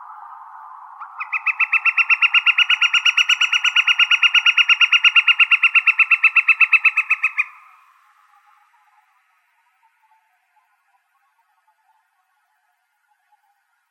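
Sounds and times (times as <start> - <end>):
woodpecker rattling call in Arizona: 1.0 - 7.8.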